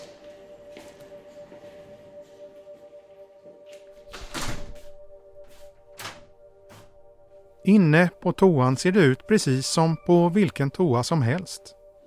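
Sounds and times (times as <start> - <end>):
toilet door in a shop thudding shut: 4.1 - 4.9
speech: 7.7 - 11.8.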